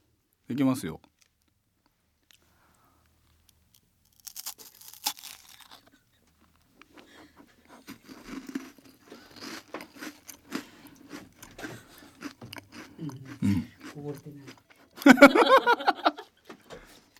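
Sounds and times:
speech: 0.5 - 1.1
crispy Lumonde biscuits being chewed: 2.2 - 15.2
laughter: 15.0 - 16.4.

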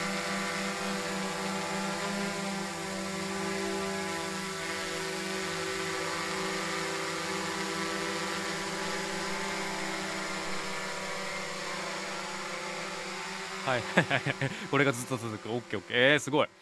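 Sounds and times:
drone propellers buzzing in flight: 0.0 - 16.5
laughter: 13.7 - 15.2
speech: 13.7 - 16.5.

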